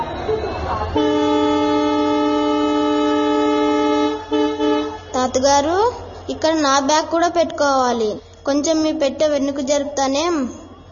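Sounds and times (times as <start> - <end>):
speech: 0.9 - 1.2, 5.3 - 10.6
long steady train horn blast: 0.9 - 5.2.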